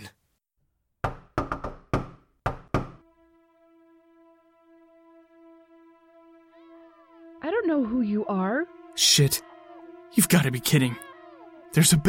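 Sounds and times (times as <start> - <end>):
sharp knocks on a door: 1.0 - 3.0
speech: 7.5 - 9.5, 10.1 - 11.1, 11.7 - 12.0.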